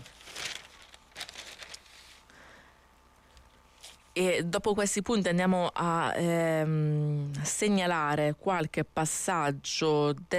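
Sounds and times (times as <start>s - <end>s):
newspaper pages rustling as a newspaper is folded and set aside: 0.0s - 2.2s
speech: 4.2s - 10.3s.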